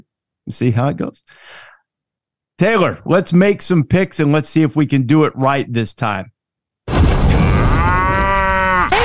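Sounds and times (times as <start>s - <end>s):
speech: 0.5s - 1.7s, 2.6s - 6.3s
cow mooing: 7.9s - 8.9s.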